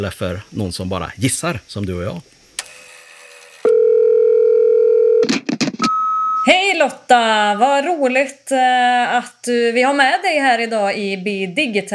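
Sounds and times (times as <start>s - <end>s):
speech: 0.0s - 2.3s, 6.4s - 11.9s
outgoing call ringing tone: 3.5s - 6.5s.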